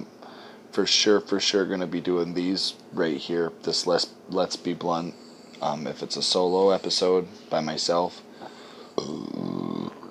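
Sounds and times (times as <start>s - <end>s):
speech: 0.8s - 8.3s
loud burp after drinking coffee: 9.0s - 10.0s.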